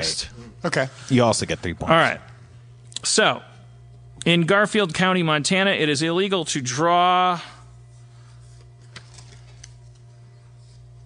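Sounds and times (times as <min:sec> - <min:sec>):
speech: 0:00.0 - 0:02.3, 0:03.0 - 0:03.5, 0:04.2 - 0:07.5
steady low electrical hum: 0:00.0 - 0:11.0
paper sheets being shuffled together: 0:08.1 - 0:11.0.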